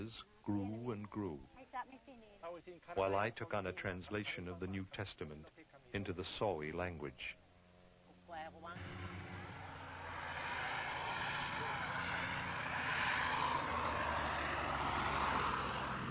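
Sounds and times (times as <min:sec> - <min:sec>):
speech: 0:00.0 - 0:07.4, 0:08.3 - 0:09.5
propeller plane flying overhead: 0:08.7 - 0:16.0.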